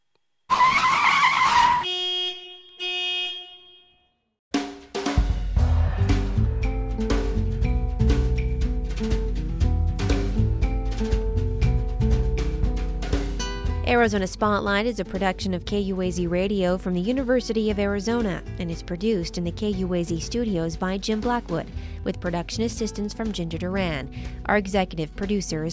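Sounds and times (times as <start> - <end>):
tires squealing as brakes lock up: 0.5 - 2.0
sustained horn-like tones: 0.5 - 4.3
music with a steady beat: 4.5 - 13.9
speech: 13.9 - 25.7.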